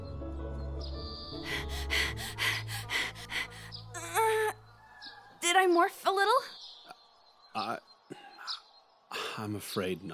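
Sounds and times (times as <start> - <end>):
noisy exaggerated deep breaths in and out: 1.4 - 3.9
brief squeaky vocal whine: 3.9 - 4.6
speech: 5.6 - 6.6, 7.6 - 8.2, 9.4 - 10.1.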